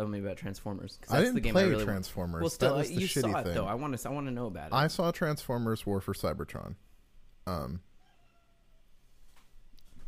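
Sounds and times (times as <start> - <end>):
speech: 0.0 - 7.9
cat meowing in a living room: 8.0 - 8.8.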